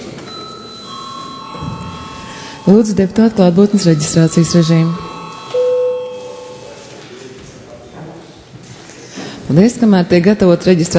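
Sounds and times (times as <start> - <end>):
chamber bell ringing at a session of deputies: 0.3 - 6.9
speech: 2.7 - 5.0, 9.5 - 10.9.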